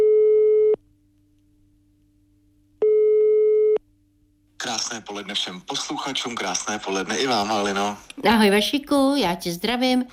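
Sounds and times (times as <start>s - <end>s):
telephone ringback tone while placing a call: 0.0s - 0.8s, 2.8s - 3.8s
faint low hum: 0.0s - 10.1s
speech: 4.8s - 10.1s.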